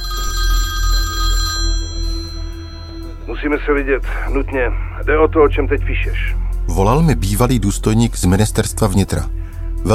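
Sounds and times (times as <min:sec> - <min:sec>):
telephone ringing with a bright electronic tone: 0:00.0 - 0:03.2
speech: 0:03.4 - 0:09.9.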